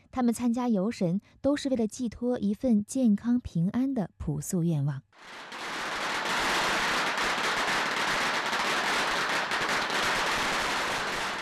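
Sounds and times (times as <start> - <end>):
speech: 0.2 - 5.6
long dense string of firecrackers crackling at a village festival: 5.2 - 11.4.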